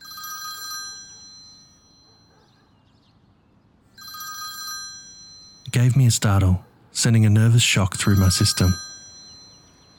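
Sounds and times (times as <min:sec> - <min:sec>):
telephone ringing with electronic trill: 0:00.0 - 0:02.1, 0:04.0 - 0:06.4, 0:07.8 - 0:09.9
speech: 0:05.7 - 0:08.9.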